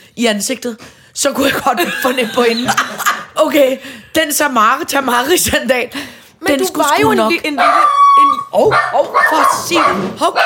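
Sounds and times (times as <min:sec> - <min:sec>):
speech: 0:00.2 - 0:10.4
laughter: 0:01.4 - 0:03.5
dog barking and howling: 0:07.5 - 0:10.4.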